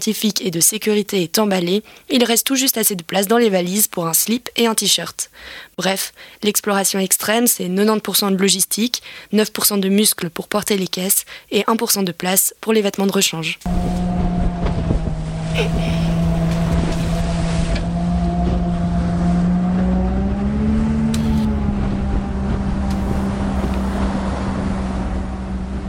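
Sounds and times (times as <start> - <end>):
speech: 0.0 - 14.4, 15.6 - 16.2
water rushing beneath a motorboat: 13.7 - 18.2, 22.9 - 24.9
motorboat engine droning: 13.7 - 25.8
wind buffeting the microphone: 13.7 - 25.8.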